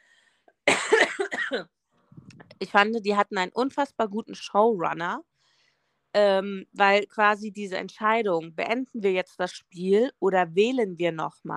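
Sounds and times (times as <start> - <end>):
harsh fit of coughing: 0.7 - 1.7
speech: 1.5 - 1.8, 2.6 - 5.3, 6.1 - 11.5.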